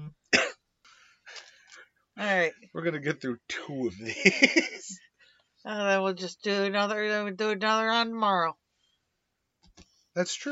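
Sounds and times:
breathy throat clearing: 0:00.0 - 0:00.6
sharp cough: 0:00.4 - 0:00.6
speech: 0:02.2 - 0:08.6, 0:10.2 - 0:10.5
laughter: 0:03.9 - 0:05.0.

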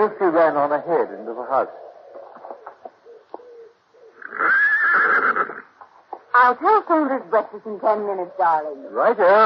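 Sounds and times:
speech: 0:00.0 - 0:01.9, 0:06.4 - 0:09.4
horse whinnying: 0:04.1 - 0:05.8.

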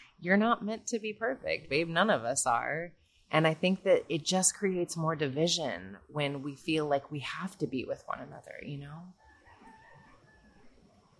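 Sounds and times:
speech: 0:00.2 - 0:09.2
rooster crowing: 0:09.2 - 0:10.8.

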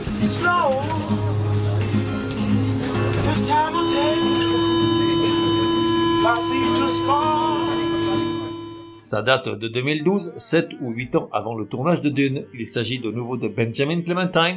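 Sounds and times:
low hum of the metro train: 0:00.1 - 0:09.0
Paris metro door-closing electronic tone: 0:03.1 - 0:09.1
speech: 0:09.1 - 0:14.5.

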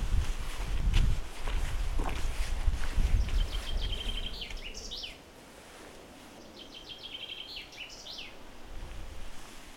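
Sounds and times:
footsteps crunching outdoors: 0:00.0 - 0:04.7
gusty wind buffeting outdoors: 0:00.0 - 0:05.1, 0:08.4 - 0:09.7
bright bird chirps: 0:03.2 - 0:05.2, 0:06.4 - 0:08.4.

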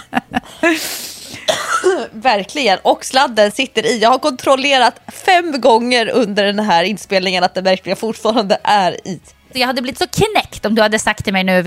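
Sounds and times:
speech: 0:00.1 - 0:01.0, 0:01.9 - 0:11.6
person coughing: 0:00.6 - 0:02.1.

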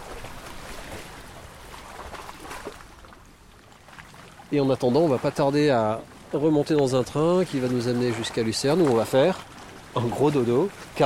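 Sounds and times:
water lapping against the hull of a boat in Switzerland: 0:00.0 - 0:11.0
speech: 0:04.5 - 0:11.0.

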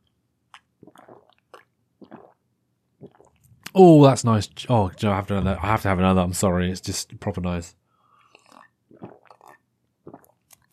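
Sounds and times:
person sipping tea: 0:00.5 - 0:02.4, 0:03.0 - 0:03.7, 0:08.1 - 0:10.7
speech: 0:03.8 - 0:07.8.

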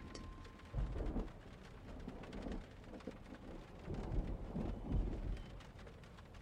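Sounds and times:
steady rain pattering: 0:00.0 - 0:06.4
thunder rumbling: 0:00.0 - 0:06.4.

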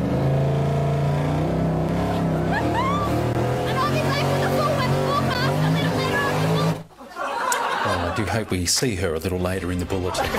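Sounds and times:
car engine revving on a mud racing track: 0:00.0 - 0:06.9
laughter: 0:02.4 - 0:03.2, 0:04.8 - 0:08.9, 0:09.8 - 0:10.3
speech: 0:08.2 - 0:10.3.

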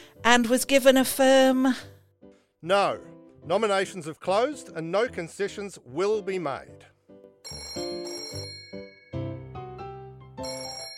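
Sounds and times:
speech: 0:00.2 - 0:01.9, 0:02.6 - 0:06.9
telephone ringing with a bright melodic electronic ringtone: 0:07.4 - 0:10.9.

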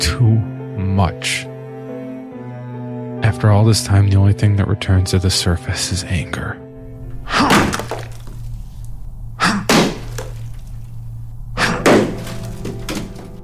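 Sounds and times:
speech: 0:01.0 - 0:01.5, 0:03.3 - 0:06.6
sledgehammer smashing through walls: 0:07.3 - 0:08.3, 0:09.6 - 0:10.5, 0:11.6 - 0:13.4
wall material breaking apart: 0:07.3 - 0:13.4.

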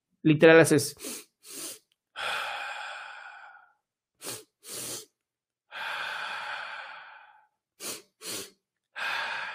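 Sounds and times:
speech: 0:00.2 - 0:02.4
two quick sharp inhales through the nose and long exhale in a breathing technique: 0:01.0 - 0:05.1, 0:05.7 - 0:09.5.

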